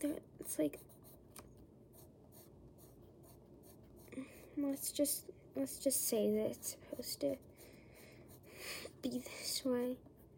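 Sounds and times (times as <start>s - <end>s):
speech: 0.0s - 1.0s, 4.2s - 7.7s, 8.6s - 10.1s
colored pencil scratching on paper while coloring a drawing: 0.4s - 1.2s, 1.9s - 4.5s, 6.2s - 8.6s.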